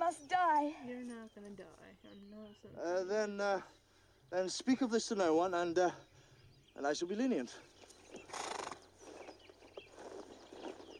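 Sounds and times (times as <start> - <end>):
speech: 0.2 - 6.1, 6.8 - 8.5
horse hooves clip-clopping: 7.8 - 10.9.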